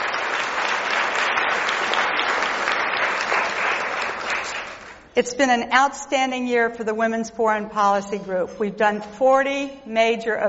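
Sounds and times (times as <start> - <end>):
large audience applause: 0.0 - 5.0
speech: 5.2 - 10.4.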